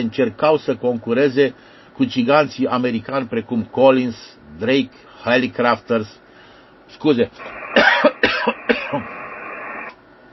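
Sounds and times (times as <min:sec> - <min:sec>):
speech: 0:00.0 - 0:06.2, 0:06.9 - 0:09.1
low hum: 0:00.0 - 0:10.3
person coughing after choking: 0:07.8 - 0:09.2.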